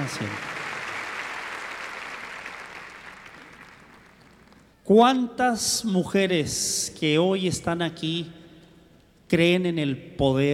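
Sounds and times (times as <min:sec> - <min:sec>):
crowd applause: 0:00.0 - 0:04.6
speech: 0:00.1 - 0:00.5, 0:04.9 - 0:08.4, 0:09.3 - 0:10.5.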